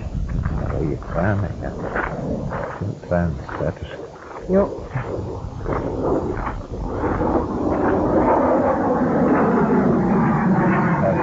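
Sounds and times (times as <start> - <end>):
airplane flying overhead: 0.0 - 11.2
speech: 0.9 - 8.0.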